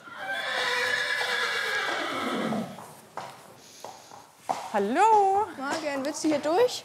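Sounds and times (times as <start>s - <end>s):
horse neighing on the island of Föhr: 0.0s - 2.8s
soft thuds of horse hooves shifting: 0.6s - 6.8s
speech: 4.7s - 6.8s.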